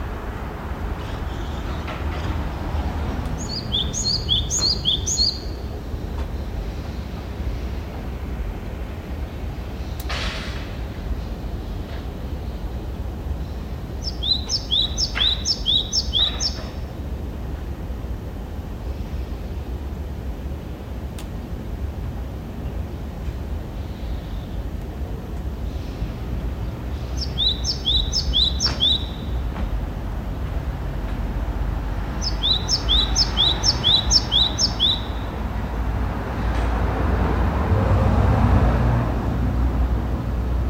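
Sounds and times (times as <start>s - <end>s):
steady low rumble of traffic: 0.0s - 40.6s
morning birds chirping in town: 0.6s - 10.1s, 10.9s - 17.6s, 22.5s - 30.3s, 31.8s - 35.8s.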